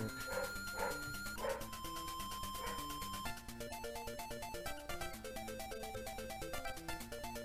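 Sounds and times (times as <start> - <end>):
bright electronic game music with a bouncy melody: 0.0 - 7.4
dog barking inside the house: 0.2 - 1.7, 2.6 - 2.9.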